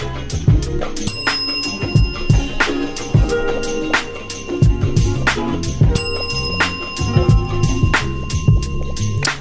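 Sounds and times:
steady rhythmic music bed with a thumping beat: 0.0 - 9.3
bicycle bell ringing: 1.0 - 9.3.

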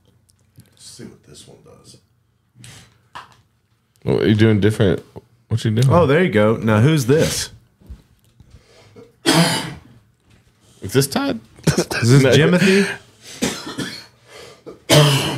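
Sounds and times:
speech: 0.8 - 2.9, 4.0 - 7.6, 10.9 - 13.0
man coughing harshly: 9.0 - 9.9, 11.6 - 15.3.

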